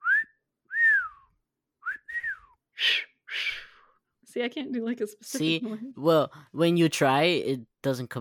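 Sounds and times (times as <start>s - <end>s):
person whistling: 0.0s - 3.9s
speech: 4.4s - 8.1s.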